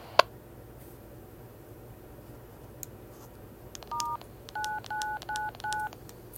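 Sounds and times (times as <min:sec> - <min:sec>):
steady low hum: 0:00.0 - 0:06.3
telephone keypad DTMF tones: 0:03.8 - 0:06.1.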